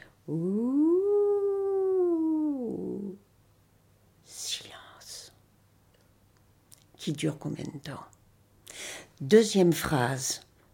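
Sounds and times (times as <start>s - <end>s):
speech: 0.3s - 0.6s, 7.1s - 8.2s, 9.2s - 10.5s
wolf howling: 0.3s - 3.2s.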